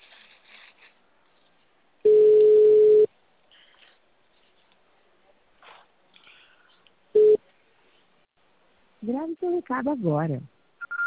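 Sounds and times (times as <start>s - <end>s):
ringback tone of an outgoing phone call: 2.1s - 3.1s, 10.8s - 11.0s
speech: 9.0s - 10.5s.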